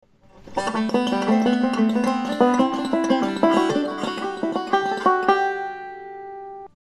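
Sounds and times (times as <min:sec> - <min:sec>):
musical scale: 0:00.6 - 0:06.7.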